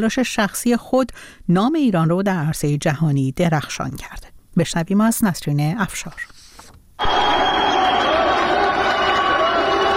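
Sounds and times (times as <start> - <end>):
speech: 0.0 - 6.4, 7.0 - 7.6
large crowd cheering loudly: 7.0 - 9.9.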